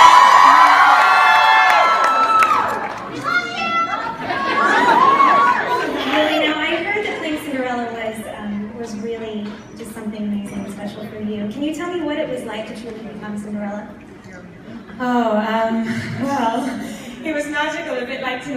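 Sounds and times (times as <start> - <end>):
excited shouts: 0.0 - 6.4
large theater crowd cheering and whooping after a movie screening: 0.0 - 6.4
busy murmur of voices: 3.0 - 18.5
laughter: 3.1 - 6.5.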